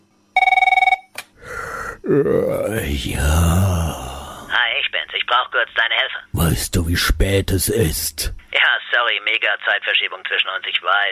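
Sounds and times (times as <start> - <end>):
loud telephone ringing: 0.4 - 1.1
low groggy vocal grunt: 1.4 - 4.6, 6.4 - 8.4
speech: 2.1 - 4.1, 5.2 - 8.4, 9.2 - 11.0.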